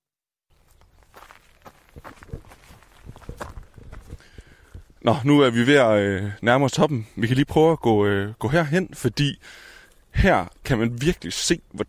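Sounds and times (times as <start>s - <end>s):
footsteps of two people crunching uphill on rough ground in Jutland Denmark: 0.5s - 5.9s
speech: 5.0s - 11.8s.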